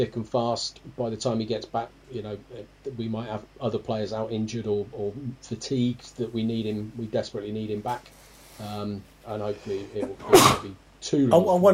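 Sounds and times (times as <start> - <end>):
speech: 0.0 - 11.7
sneeze: 10.2 - 10.7.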